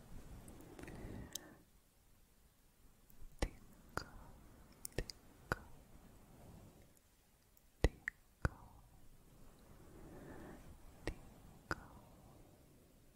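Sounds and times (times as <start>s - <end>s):
soft close mouth sounds: 0.4s - 1.6s, 3.1s - 5.9s, 6.8s - 9.0s, 9.9s - 12.3s.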